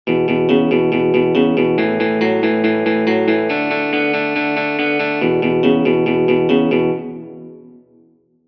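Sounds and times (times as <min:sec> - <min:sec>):
rock and roll music: 0:00.1 - 0:07.6.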